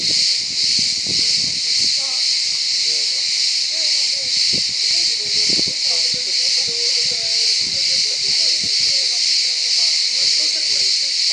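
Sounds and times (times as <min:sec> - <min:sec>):
cicadas droning in a harsh buzz: 0:00.0 - 0:11.3.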